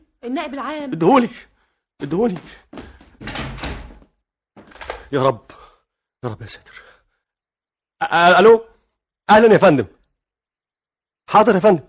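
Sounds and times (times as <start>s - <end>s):
speech: 0.2s - 3.3s, 5.1s - 5.6s, 6.2s - 6.9s, 8.0s - 8.7s, 9.3s - 10.0s, 11.3s - 11.8s
door shutting with a solid thump: 3.2s - 5.1s.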